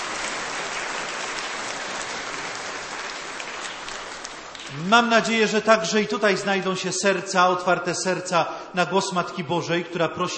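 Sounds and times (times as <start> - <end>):
large audience applauding in a parish: 0.0 - 5.1
speech: 4.7 - 10.3.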